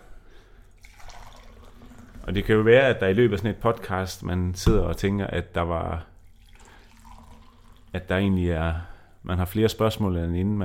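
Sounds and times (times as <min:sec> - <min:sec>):
small drips and splashes in a cup: 0:00.7 - 0:02.6, 0:06.2 - 0:08.1
coffee being poured into a cup: 0:00.7 - 0:03.0, 0:06.2 - 0:08.1
speech: 0:02.3 - 0:06.1, 0:07.9 - 0:10.6.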